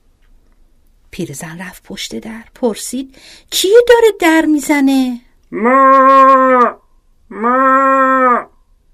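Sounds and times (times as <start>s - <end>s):
speech: 1.2s - 7.7s
human voice imitating a black cow mooing: 5.5s - 8.5s.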